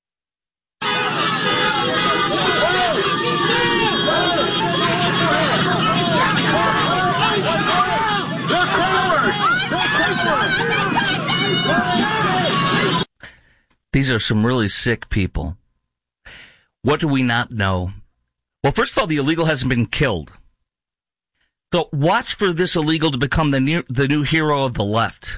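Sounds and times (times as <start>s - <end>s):
faint road traffic: 0.8s - 13.0s
agitated crowd shouting at police in a street: 0.8s - 13.1s
speech: 14.0s - 15.6s, 16.3s - 18.0s, 18.6s - 20.4s, 21.7s - 25.3s.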